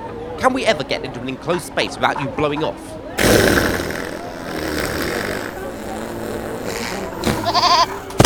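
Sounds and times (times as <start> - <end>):
speech: 0.4 - 3.6
indistinct voices: 3.2 - 8.2
goat bleating: 7.1 - 8.2.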